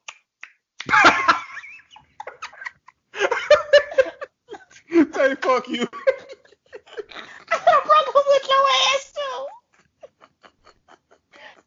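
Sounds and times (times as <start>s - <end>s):
voice imitating wet tongue chewing with mouth smacks and clicks: 0.0s - 1.0s
laughter: 0.9s - 8.4s, 9.6s - 11.6s
speech: 5.2s - 6.1s.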